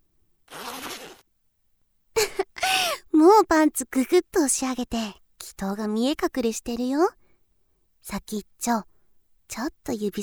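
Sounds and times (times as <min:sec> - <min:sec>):
zipper being pulled down: 0:00.5 - 0:01.2
speech: 0:03.2 - 0:07.2, 0:08.0 - 0:08.9, 0:09.5 - 0:10.2.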